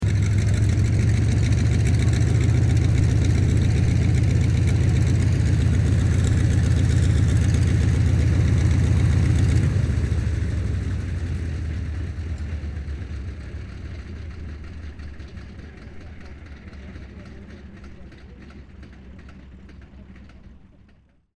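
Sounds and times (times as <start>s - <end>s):
CA-28 Ceres aircraft engine idling and shutting down: 0.0s - 21.3s.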